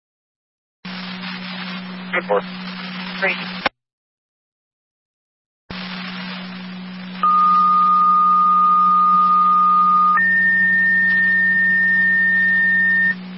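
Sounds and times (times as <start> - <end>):
constant hum: 0.9 - 3.7, 5.7 - 13.3
radio static: 0.9 - 3.7, 5.7 - 13.3
speech: 2.2 - 2.6, 3.2 - 3.7
fire dispatch paging tones for an EMS call: 7.2 - 13.2.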